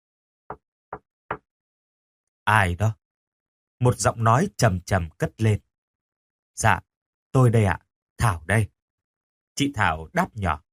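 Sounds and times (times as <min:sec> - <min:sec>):
hand knocking lightly on a door: 0:00.5 - 0:01.5
speech: 0:02.5 - 0:03.0, 0:03.8 - 0:05.7, 0:06.6 - 0:08.8, 0:09.6 - 0:10.6.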